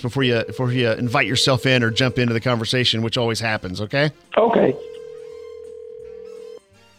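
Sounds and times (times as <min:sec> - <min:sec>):
electronic phone ringing tone of an outgoing call: 0:00.0 - 0:02.7, 0:04.5 - 0:06.6
speech: 0:00.0 - 0:04.9.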